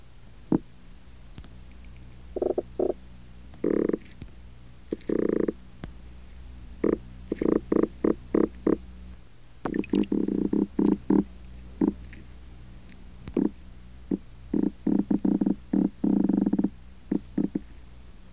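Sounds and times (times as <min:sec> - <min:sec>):
two female Pogonias cromis black drum calling in North Carolina: 0:02.3 - 0:03.0, 0:03.6 - 0:04.2, 0:04.9 - 0:05.6, 0:06.8 - 0:08.9, 0:09.6 - 0:12.3, 0:13.2 - 0:17.7.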